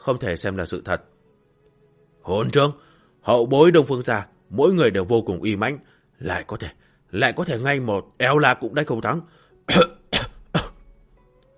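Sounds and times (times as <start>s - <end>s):
speech: 0.0s - 1.2s, 2.2s - 9.9s
old woman coughing violently in anger: 9.7s - 10.8s.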